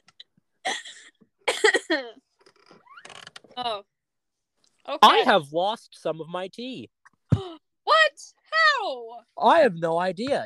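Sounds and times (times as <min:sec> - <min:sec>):
person coughing: 0:00.7 - 0:02.1
speech: 0:01.9 - 0:02.3, 0:03.6 - 0:03.9, 0:04.9 - 0:07.0, 0:08.9 - 0:10.4.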